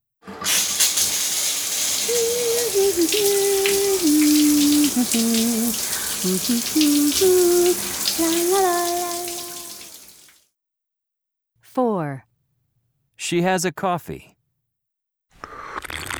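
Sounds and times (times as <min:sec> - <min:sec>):
shower water running: 0:00.3 - 0:10.4
person humming or singing a wandering tune: 0:02.0 - 0:10.0
speech: 0:02.2 - 0:09.2, 0:13.3 - 0:14.3.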